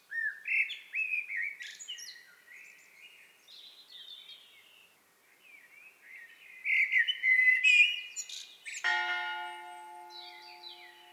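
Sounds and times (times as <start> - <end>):
common blackbird Turdus merula singing: 6.6 - 11.1.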